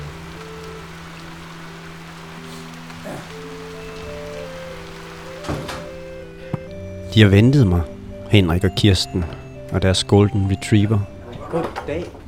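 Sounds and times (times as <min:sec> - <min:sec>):
steady rain hissing outdoors by a red brick building on Mors by the Limfjord: 0:00.0 - 0:06.8
faint organ music from inside a brick building: 0:00.0 - 0:12.0
speech: 0:07.1 - 0:12.2.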